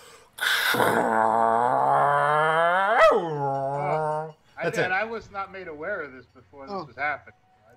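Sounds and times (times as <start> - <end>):
person vocally imitating Air Force jets flying over New York City: 0.4 - 4.3
speech: 0.8 - 1.2, 4.7 - 7.4.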